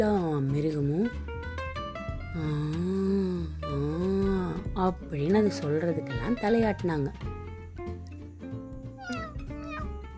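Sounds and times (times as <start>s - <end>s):
speech: 0.0s - 1.5s, 4.8s - 7.4s
steady music: 0.0s - 10.1s
cat meowing: 9.0s - 10.0s.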